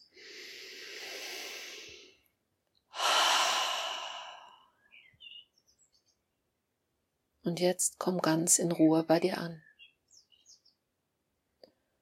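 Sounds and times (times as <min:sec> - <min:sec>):
slow deep breathing during a guided relaxation exercise: 0:00.0 - 0:02.3, 0:02.9 - 0:04.8
speech: 0:07.5 - 0:09.7.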